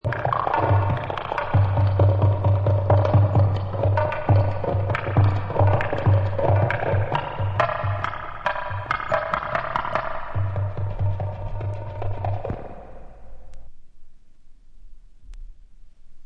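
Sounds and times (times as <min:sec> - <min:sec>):
drum track with reverb: 0:00.1 - 0:12.8.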